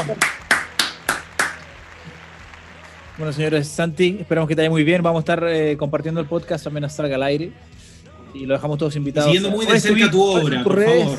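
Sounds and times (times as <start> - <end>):
speech: 0.0 - 0.4, 3.2 - 7.8, 8.4 - 11.1
hands clapping: 0.0 - 4.0
faint low murmur of noise: 0.0 - 4.5.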